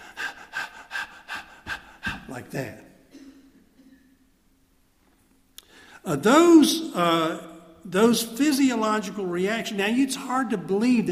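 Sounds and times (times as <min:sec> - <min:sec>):
person demonstrating shallow rapid breathing: 0:00.0 - 0:02.6
speech: 0:02.3 - 0:02.9, 0:06.1 - 0:11.0.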